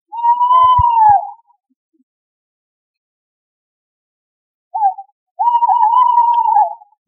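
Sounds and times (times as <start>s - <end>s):
tawny owl song at higher pitch: 0.1s - 1.5s, 4.8s - 6.9s.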